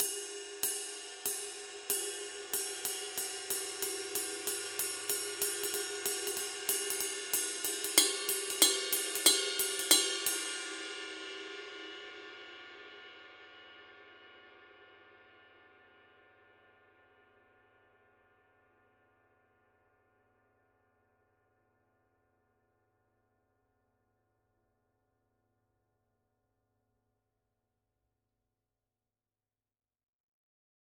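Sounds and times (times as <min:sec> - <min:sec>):
22-inch medium ride cymbal pattern: 0:00.0 - 0:11.9.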